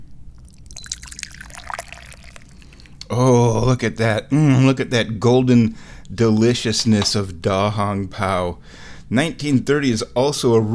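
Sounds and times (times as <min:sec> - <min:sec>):
low hum: 0:00.0 - 0:10.7
tea being poured into a cup: 0:00.4 - 0:03.2
speech: 0:03.1 - 0:10.7.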